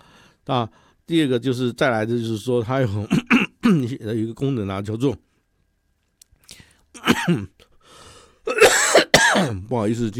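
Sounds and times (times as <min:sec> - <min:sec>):
breath: 0:00.0 - 0:01.0, 0:06.4 - 0:06.9, 0:07.7 - 0:08.4
speech: 0:00.5 - 0:05.3, 0:07.0 - 0:07.6, 0:08.5 - 0:10.1
person with a cold coughing: 0:03.0 - 0:03.8, 0:07.0 - 0:07.5, 0:08.5 - 0:09.6.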